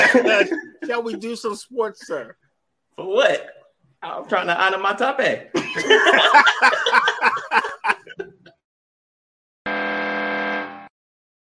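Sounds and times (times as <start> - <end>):
snickering laughter: 0.0 - 0.8, 5.6 - 8.5
speech: 0.0 - 2.4, 3.0 - 8.4
harsh flat game show wrong-answer buzzer: 9.7 - 10.9.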